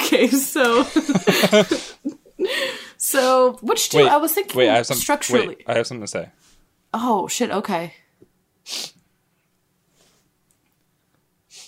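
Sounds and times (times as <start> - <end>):
laughter: 0.0 - 2.5
speech: 0.1 - 8.0, 8.7 - 8.9
person sneezing: 8.7 - 9.0.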